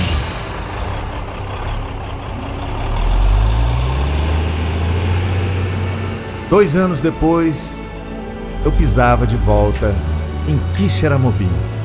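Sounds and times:
bus engine rumbling while driving along the road: 0:00.0 - 0:11.8
speech: 0:06.5 - 0:07.9, 0:08.6 - 0:11.7.

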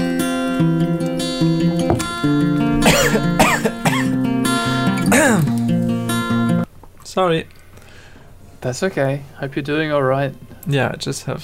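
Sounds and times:
music: 0:00.0 - 0:06.7
speech: 0:00.6 - 0:00.9, 0:07.2 - 0:07.6, 0:08.6 - 0:11.4
person coughing from a tiny thing caught in the throat: 0:02.8 - 0:04.2, 0:05.0 - 0:05.5.

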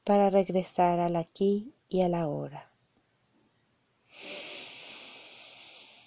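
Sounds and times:
speech: 0:00.1 - 0:02.7, 0:04.1 - 0:04.5
long deep breath drawn in close to the microphone: 0:04.1 - 0:06.0.

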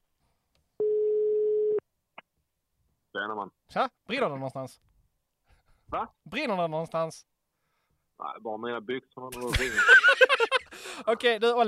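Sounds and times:
telephone ringing tone on an outgoing call: 0:00.8 - 0:01.8
speech: 0:03.2 - 0:04.9, 0:05.9 - 0:07.3, 0:08.2 - 0:11.6
laughter: 0:09.4 - 0:11.1.

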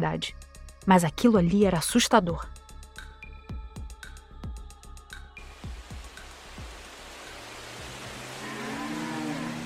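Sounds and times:
speech: 0:00.0 - 0:02.6
cows mooing: 0:08.2 - 0:09.6.

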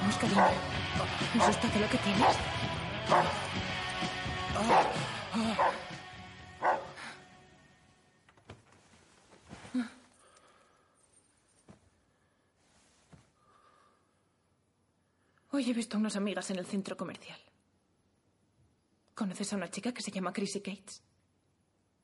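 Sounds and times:
speech: 0:00.1 - 0:03.4, 0:04.6 - 0:05.9, 0:09.8 - 0:10.0, 0:15.6 - 0:17.6, 0:19.2 - 0:21.1
dog barking at a couple on a bed: 0:00.3 - 0:00.7, 0:02.2 - 0:02.5, 0:03.1 - 0:03.4, 0:04.6 - 0:05.8, 0:06.6 - 0:07.0.

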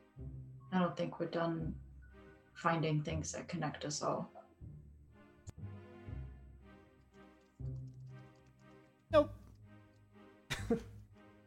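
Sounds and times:
speech: 0:00.7 - 0:01.8, 0:02.6 - 0:04.4, 0:09.1 - 0:09.4
short harsh throaty cough: 0:10.5 - 0:11.0.

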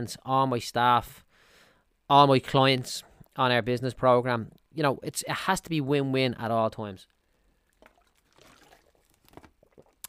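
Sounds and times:
speech: 0:00.0 - 0:01.3, 0:02.1 - 0:07.2
person gulping water: 0:07.6 - 0:10.0
water sloshing: 0:07.6 - 0:10.0.

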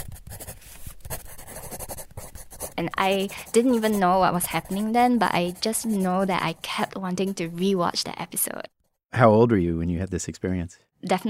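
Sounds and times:
pencil drawing on paper: 0:00.0 - 0:08.2
speech: 0:02.8 - 0:11.2.

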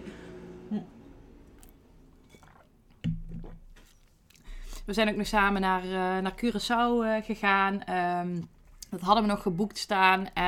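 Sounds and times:
speech: 0:00.7 - 0:01.0, 0:04.9 - 0:10.4
quiet sipping of water: 0:01.4 - 0:05.4
soft mouth clicks and gulps: 0:01.6 - 0:04.9, 0:08.4 - 0:09.0.

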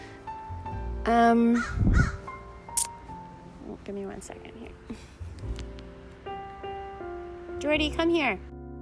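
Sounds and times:
speech: 0:01.0 - 0:02.2, 0:03.8 - 0:05.6, 0:07.6 - 0:08.5
crow cawing overhead in a backyard: 0:01.6 - 0:02.3.

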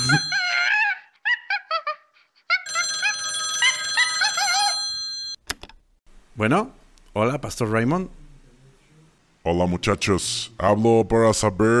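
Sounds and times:
telephone ringing with a bright melodic ringtone: 0:00.0 - 0:00.6, 0:02.7 - 0:05.4
speech: 0:00.1 - 0:00.4, 0:06.4 - 0:08.2, 0:09.5 - 0:11.7.

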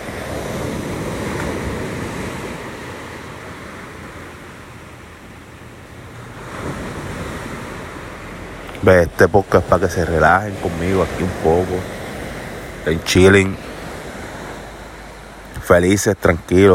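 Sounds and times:
ocean waves breaking on shore: 0:00.0 - 0:16.7
speech: 0:08.8 - 0:12.0, 0:12.8 - 0:13.7, 0:15.7 - 0:16.7.

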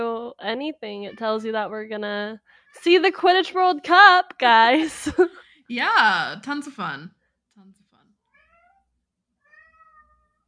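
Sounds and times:
speech: 0:00.0 - 0:07.8
cat with separation anxiety meowing: 0:08.4 - 0:08.8, 0:09.4 - 0:10.4.

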